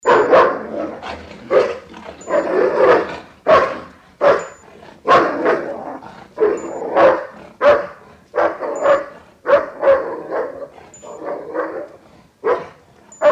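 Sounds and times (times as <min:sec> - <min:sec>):
dog barking: 0:00.0 - 0:05.8, 0:06.4 - 0:13.3.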